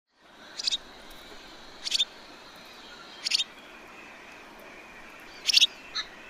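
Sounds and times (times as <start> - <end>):
low hiss: 0.1 - 6.2
Superb starling harsh chattering song: 0.6 - 0.9, 1.8 - 2.1, 3.1 - 3.5, 5.3 - 6.2.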